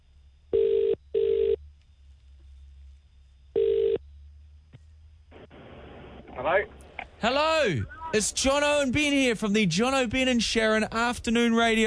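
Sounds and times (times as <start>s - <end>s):
faint low hum: 0.0s - 11.8s
phone ringback tone on an outgoing call: 0.5s - 1.6s, 3.6s - 4.0s
speech: 6.4s - 11.8s.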